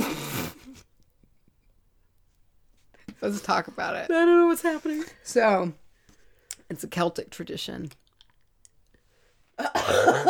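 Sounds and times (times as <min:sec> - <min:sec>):
speech: 0:03.2 - 0:05.8, 0:06.7 - 0:08.0, 0:09.6 - 0:10.2
person coughing: 0:09.6 - 0:10.2.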